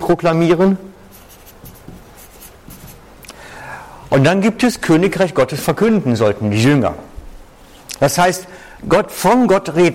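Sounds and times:
speech: 0.1 - 0.9, 4.1 - 7.1, 8.0 - 9.9
pen writing on paper: 1.2 - 3.0.

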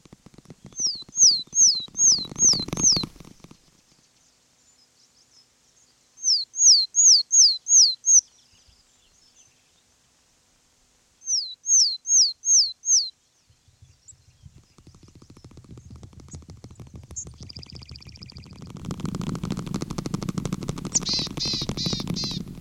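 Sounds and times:
willow tit song: 0.6 - 3.2, 6.2 - 9.6, 11.2 - 16.4, 17.1 - 18.7, 20.9 - 22.4
low rumbling noise: 15.6 - 22.6.

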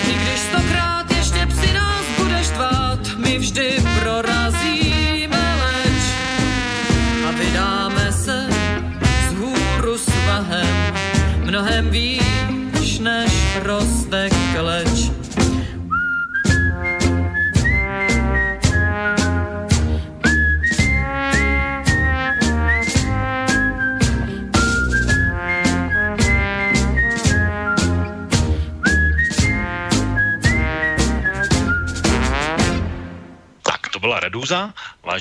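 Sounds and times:
rhythmic band accompaniment with regular beats: 0.0 - 33.6
whistled melody: 15.9 - 32.4.

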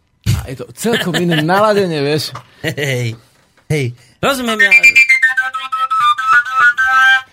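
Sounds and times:
speech: 0.5 - 5.1
koncovka overtone flute playing a quick run of tongued notes: 4.5 - 7.3.

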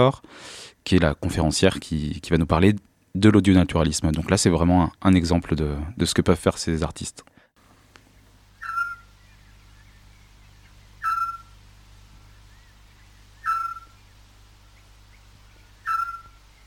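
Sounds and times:
speech: 0.0 - 7.3
low steady hum: 0.0 - 16.6
Eurasian scops owl calling at night: 8.0 - 16.6.

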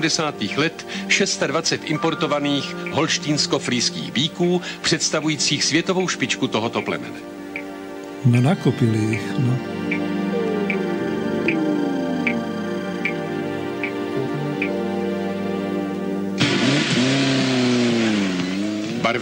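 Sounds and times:
speech: 0.0 - 7.4, 8.2 - 9.8, 19.1 - 19.2
steady periodic ticking: 2.0 - 15.6
race car engines revving: 10.2 - 19.2.

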